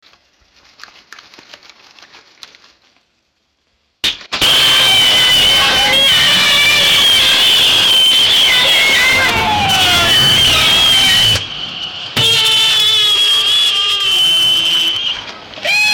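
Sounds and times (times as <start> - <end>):
car crash: 4.0 - 15.9.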